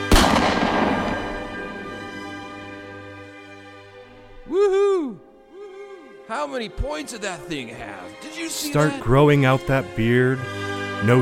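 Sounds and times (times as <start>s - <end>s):
gunshot from a hunting gun being sighted in: 0.0s - 2.8s
speech: 6.3s - 11.2s.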